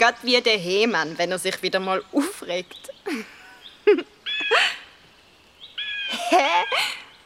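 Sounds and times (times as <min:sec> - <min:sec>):
speech: 0:00.0 - 0:04.7, 0:06.2 - 0:07.0
bird giving nasal cat-like mewing calls: 0:03.4 - 0:07.2
laughter: 0:06.1 - 0:07.0.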